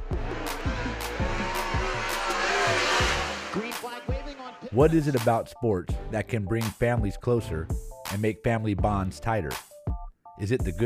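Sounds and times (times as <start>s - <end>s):
race cars roaring past on an auto racing track: 0.0s - 4.8s
speech: 4.7s - 9.7s, 10.4s - 10.8s.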